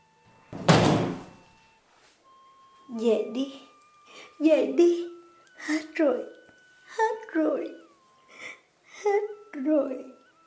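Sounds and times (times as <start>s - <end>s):
door slamming shut: 0.5s - 1.4s
speech: 3.0s - 3.7s, 4.4s - 7.8s, 9.0s - 10.1s.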